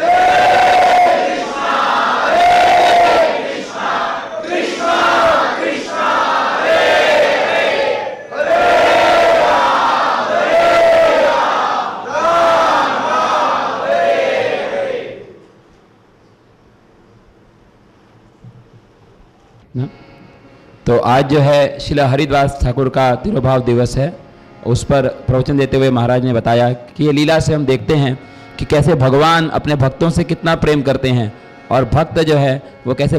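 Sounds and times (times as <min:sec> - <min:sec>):
crowd loudly chanting holy names: 0:00.0 - 0:15.4
speech: 0:21.1 - 0:33.1.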